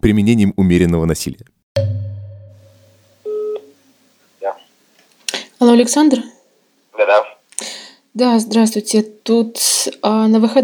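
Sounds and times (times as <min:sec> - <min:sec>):
speech: 0:00.0 - 0:01.9, 0:05.6 - 0:06.4, 0:07.0 - 0:10.6
phone tone as a call is placed: 0:02.2 - 0:03.7.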